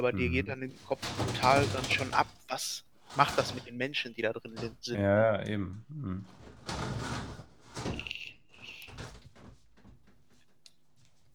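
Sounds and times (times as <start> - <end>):
speech: 0.0 - 8.0
window frame and handle knocking and rattling as a window is opened: 0.8 - 3.7, 6.3 - 10.4.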